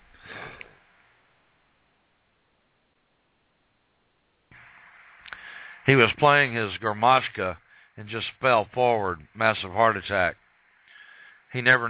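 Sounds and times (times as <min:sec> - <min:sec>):
short rough throat clearing: 0:00.2 - 0:00.7
speech: 0:05.8 - 0:10.4, 0:11.5 - 0:11.8.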